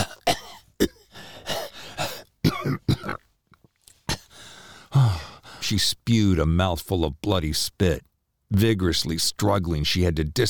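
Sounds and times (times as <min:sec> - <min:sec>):
person coughing hard: 0:00.0 - 0:03.3, 0:04.1 - 0:04.4
person gasping for breath: 0:01.0 - 0:02.3, 0:04.0 - 0:05.6
speech: 0:05.7 - 0:10.4.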